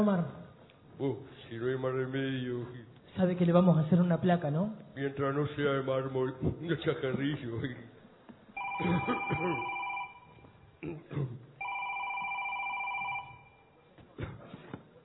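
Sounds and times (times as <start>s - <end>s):
speech: 0.0s - 0.4s, 1.0s - 7.9s, 8.8s - 9.8s, 10.8s - 11.4s
cell phone ringing with electronic trill: 8.6s - 10.5s, 11.6s - 13.7s.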